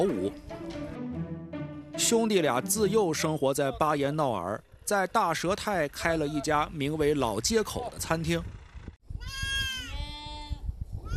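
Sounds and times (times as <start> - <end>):
speech: 0.0 - 0.6, 2.0 - 8.6
sheep of a grassland breed bleating: 9.2 - 11.1.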